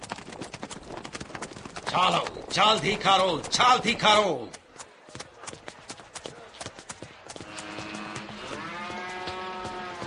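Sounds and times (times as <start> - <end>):
sharp clopping steps: 0.0 - 10.0
speech: 1.9 - 4.6
water buffalo lowing: 7.4 - 10.0.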